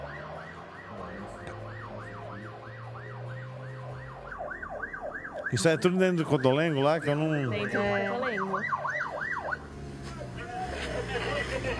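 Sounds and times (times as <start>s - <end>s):
low rumbling ambulance engine drone: 0.0s - 5.3s
ambulance siren wailing: 0.0s - 11.7s
speech: 5.5s - 8.8s
laughter: 10.4s - 11.7s.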